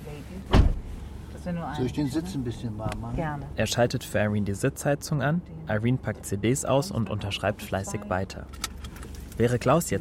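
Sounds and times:
heavy car door shutting: 0.4s - 1.0s
speech: 1.4s - 8.7s, 9.4s - 10.0s.

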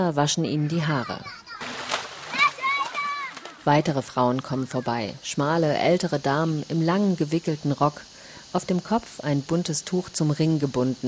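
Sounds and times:
speech: 0.0s - 1.5s, 3.6s - 11.0s
excited children calling out while playing in water: 1.0s - 5.2s
children splashing in an irrigation canal: 1.5s - 5.0s.

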